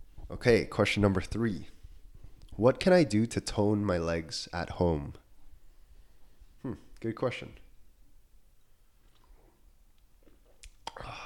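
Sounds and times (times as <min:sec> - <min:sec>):
speech: 0:00.3 - 0:01.8, 0:02.6 - 0:05.2, 0:06.6 - 0:07.6
soft lip smacks: 0:08.6 - 0:11.1
person sipping coffee: 0:08.6 - 0:11.2.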